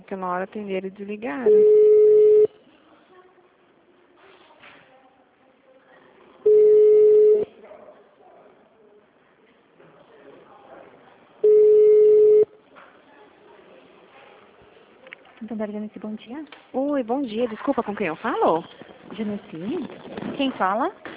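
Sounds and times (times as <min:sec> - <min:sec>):
speech: 0:00.1 - 0:01.9, 0:15.6 - 0:21.1
telephone ringback tone on an outgoing call: 0:01.5 - 0:02.5, 0:06.5 - 0:07.4, 0:11.4 - 0:12.5.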